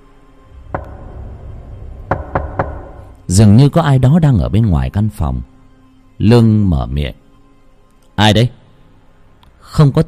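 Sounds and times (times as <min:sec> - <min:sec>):
faint low hum: 0:00.0 - 0:10.0
knocking on a door at night: 0:00.7 - 0:03.2
speech: 0:03.3 - 0:05.5, 0:06.2 - 0:07.2, 0:08.2 - 0:08.6, 0:09.7 - 0:10.0.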